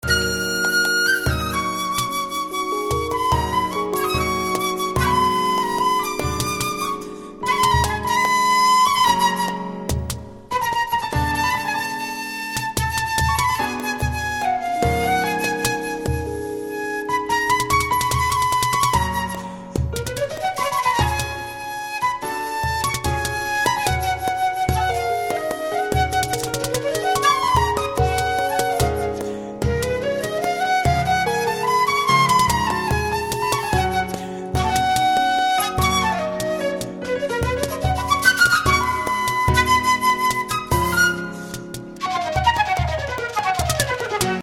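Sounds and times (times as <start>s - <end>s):
flamenco flute: 0.0s - 44.4s.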